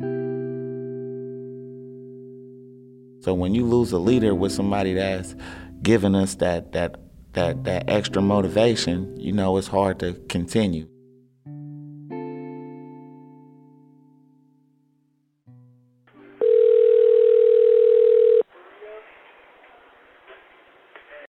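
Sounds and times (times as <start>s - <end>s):
speech: 3.2s - 10.9s
loud steady electronic telephone ring tone before an emergency call: 16.4s - 18.4s
hissy crackling phone line: 16.4s - 21.2s.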